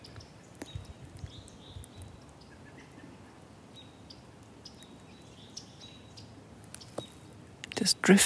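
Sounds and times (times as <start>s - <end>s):
yellow-rumped warbler chip calls: 0.0s - 8.0s
faint birdsong: 0.0s - 8.2s
speech: 7.8s - 8.2s.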